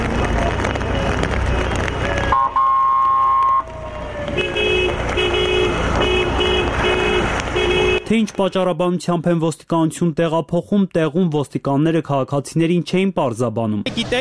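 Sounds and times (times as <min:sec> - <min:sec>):
cars crawling through city streets in a protest motorcade: 0:00.0 - 0:09.8
long sustained car horn blasts in a protest motorcade: 0:04.3 - 0:08.1
speech: 0:08.1 - 0:14.1.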